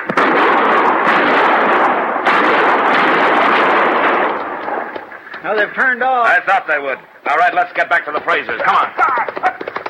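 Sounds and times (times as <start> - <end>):
rifle fire at attackers near a hut: 0.0 - 5.0
speech: 5.4 - 9.8.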